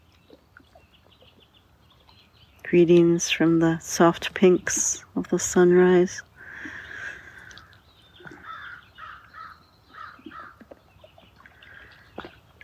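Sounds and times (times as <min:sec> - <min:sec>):
steady outdoor hiss: 0:00.0 - 0:11.8
speech: 0:02.7 - 0:06.3
birds cawing by the lake: 0:06.5 - 0:10.6.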